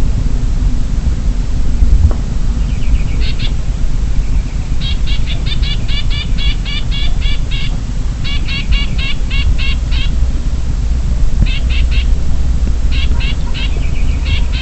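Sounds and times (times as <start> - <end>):
steady low rumble: 0.0 - 14.6
Chinese grassbird Graminicola striatus sinicus alarm call in Guangxi China: 2.6 - 10.4, 11.4 - 14.6.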